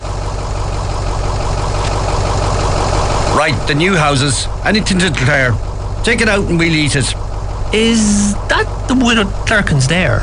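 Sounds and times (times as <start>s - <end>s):
bus engine idling: 0.0s - 10.2s
speech: 3.4s - 10.2s.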